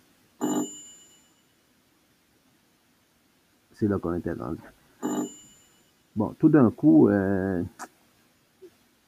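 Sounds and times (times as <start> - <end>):
single bright bell strike like a doorbell chime: 0.4 - 1.5, 5.0 - 6.0
speech: 3.8 - 4.8, 6.2 - 7.9.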